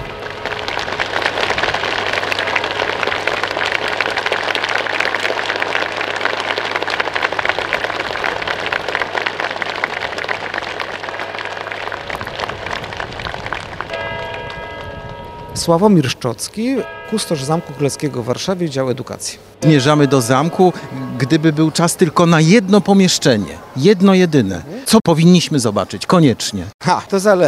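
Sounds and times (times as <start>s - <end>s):
crowd clapping at the Royal Castle in Warsaw: 0.0s - 15.2s
speech: 15.6s - 27.4s.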